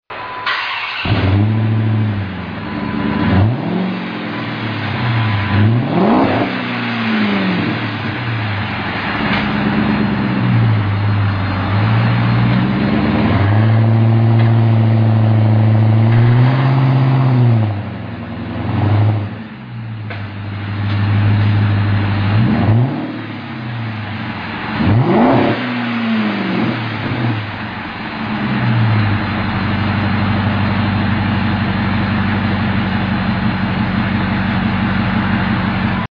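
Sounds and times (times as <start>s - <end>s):
Dodge Charger Hemi with Magnaflow dual exhaust: 1.0s - 36.1s.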